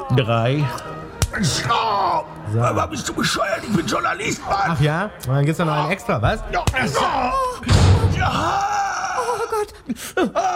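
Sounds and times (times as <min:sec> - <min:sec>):
speech: 0:00.1 - 0:08.7, 0:09.5 - 0:10.5
person crying out in pain: 0:06.8 - 0:10.5
heavy door slamming shut on a person's foot: 0:07.6 - 0:08.6.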